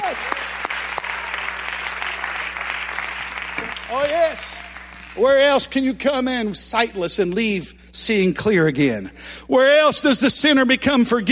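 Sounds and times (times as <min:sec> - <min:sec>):
audience clapping hands: 0:00.0 - 0:05.7
speech: 0:00.1 - 0:00.5, 0:03.9 - 0:11.3.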